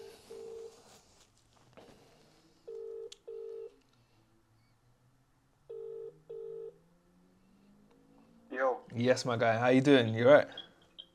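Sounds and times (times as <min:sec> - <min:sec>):
outgoing phone call ring tone: 0:00.0 - 0:00.8, 0:02.7 - 0:03.7, 0:05.7 - 0:06.8
speech: 0:09.0 - 0:10.7.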